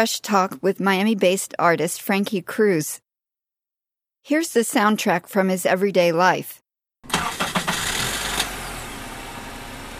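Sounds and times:
speech: 0.0s - 3.0s, 4.2s - 7.4s
car engine cranking, trying to start: 7.0s - 9.9s.

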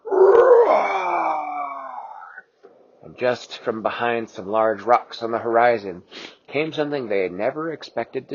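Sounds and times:
Tyrannosaurus rex roar: 0.0s - 2.4s
speech: 3.2s - 8.3s.

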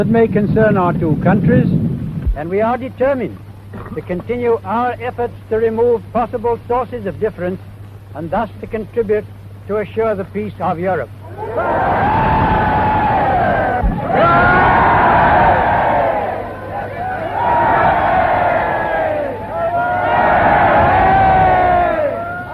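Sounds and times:
speech: 0.0s - 12.8s
large crowd shouting and cheering: 11.2s - 22.5s.

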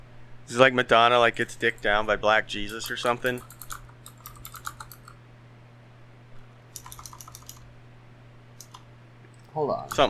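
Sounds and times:
speech: 0.5s - 3.6s, 9.6s - 10.0s
computer keyboard typing a web search: 2.6s - 5.2s, 6.7s - 7.7s, 8.6s - 8.9s, 9.9s - 10.0s.

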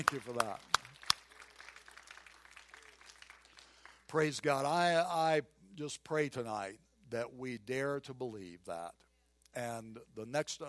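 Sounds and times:
speech: 0.0s - 0.8s, 4.1s - 9.0s, 9.6s - 10.6s
crowd applauding: 0.0s - 4.1s.

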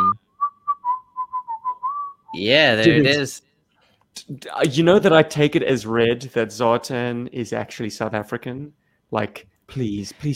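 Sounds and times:
person whistling a quick jaunty tune mimicking a character's signature whistle: 0.0s - 2.4s
speech: 2.3s - 3.5s, 4.2s - 10.3s.

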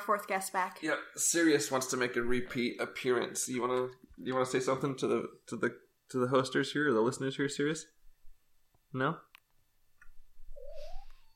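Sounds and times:
speech: 0.0s - 8.0s, 8.9s - 9.3s
faint chirp: 10.5s - 11.3s
small female cat meowing softly: 10.5s - 11.3s.

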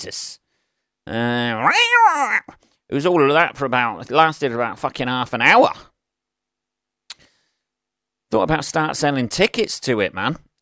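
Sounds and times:
speech: 0.0s - 0.4s, 1.0s - 5.9s, 8.3s - 10.6s
person yowling imitating fighting cats: 1.4s - 2.6s.

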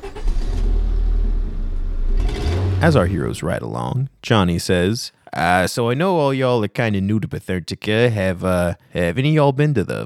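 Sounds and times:
car engine starting up and revving: 0.0s - 4.0s
speech: 2.8s - 10.0s.

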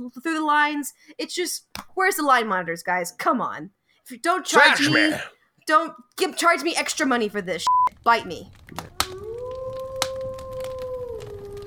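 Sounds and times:
speech: 0.0s - 9.0s
wolf howling in the north: 9.0s - 11.6s.

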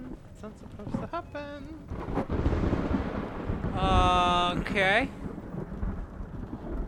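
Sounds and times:
speech: 0.4s - 2.7s, 3.8s - 5.2s
deep rolling thunder crack: 1.8s - 6.8s.

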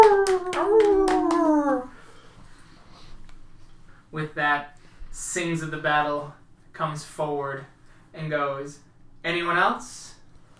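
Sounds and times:
hand claps: 0.0s - 1.9s
human voice howling like a wolf: 0.0s - 2.0s
speech: 4.4s - 10.1s.

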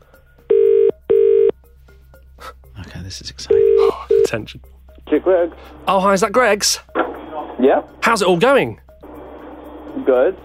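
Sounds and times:
phone ringback tone on an outgoing call: 0.5s - 1.6s, 3.5s - 4.4s
speech: 3.1s - 6.9s, 7.6s - 8.8s, 10.1s - 10.4s.

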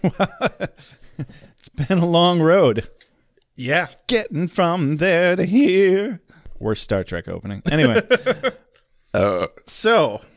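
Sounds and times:
laughter: 0.0s - 1.4s, 7.7s - 8.7s
speech: 0.0s - 3.0s, 3.6s - 10.3s
deep resonant burps: 9.2s - 9.7s.

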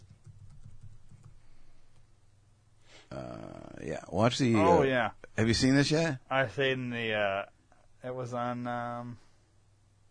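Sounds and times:
typing on a computer keyboard to enter a search: 0.0s - 2.0s
speech: 3.1s - 9.2s.

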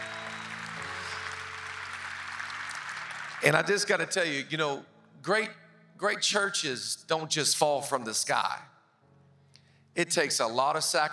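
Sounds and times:
large crowd clapping and applauding: 0.0s - 4.3s
speech: 3.4s - 8.7s, 10.0s - 11.1s.

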